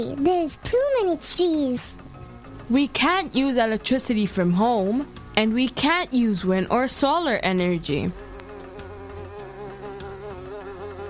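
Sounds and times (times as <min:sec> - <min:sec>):
speech: 0:00.0 - 0:02.0, 0:02.7 - 0:08.2
bee buzzing in flight: 0:00.6 - 0:11.0.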